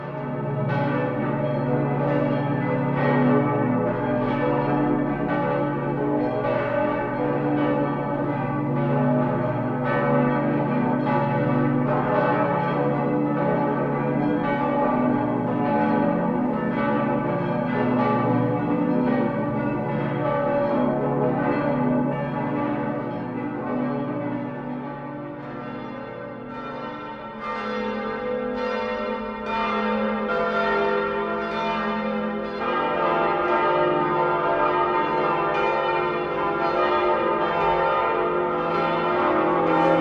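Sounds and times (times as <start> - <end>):
collegiate basilica church bells pealing to ring in Christmas Eve: 0.0 - 40.0.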